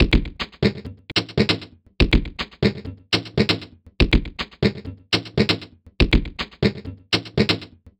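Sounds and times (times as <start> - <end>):
synthetic machine percussion loop: 0.0 - 7.9.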